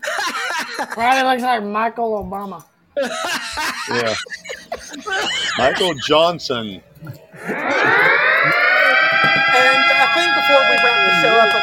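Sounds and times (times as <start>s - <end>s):
laughter: 0.0s - 1.2s, 3.0s - 11.6s
speech: 0.8s - 8.6s, 9.3s - 11.6s
reminder alarm with siren-like tone: 4.7s - 6.3s, 7.2s - 11.6s.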